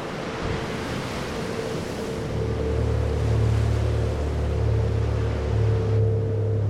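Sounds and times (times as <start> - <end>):
surf rolling along a beach: 0.0 - 6.6
low droning hum: 1.4 - 6.6.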